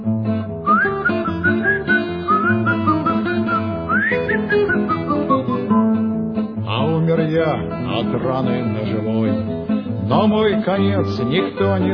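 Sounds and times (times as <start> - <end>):
instrumental music: 0.0 - 11.9
loud shrill three-finger whistle: 0.7 - 5.9
speech: 7.6 - 9.5, 10.1 - 11.9.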